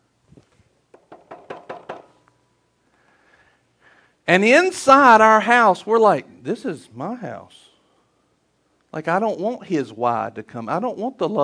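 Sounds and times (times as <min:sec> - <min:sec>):
firm knocking on a door: 0:01.0 - 0:02.1
speech: 0:04.3 - 0:07.7, 0:08.9 - 0:11.4.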